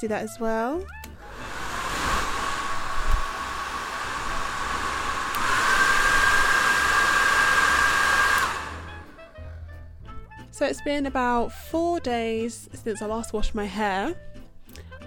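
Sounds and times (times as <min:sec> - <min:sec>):
speech: 0:00.0 - 0:01.1, 0:10.6 - 0:14.3
hair dryer with a hood attachment running: 0:01.0 - 0:09.4.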